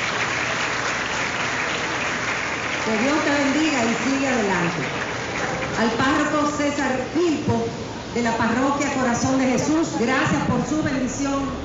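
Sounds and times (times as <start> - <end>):
audience clapping at a school ceremony: 0.0 - 6.2
speech: 2.8 - 11.6.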